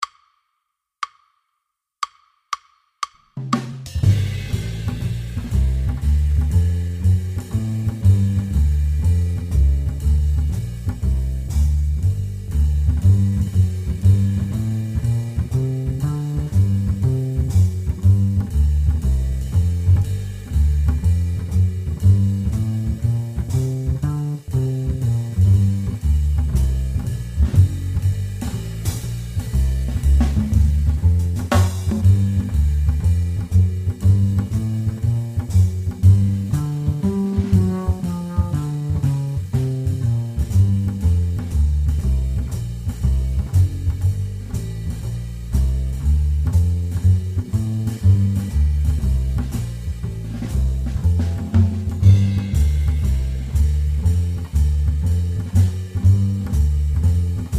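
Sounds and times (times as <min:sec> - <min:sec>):
jazz bass lick in G minor: 0:03.5 - 0:57.5.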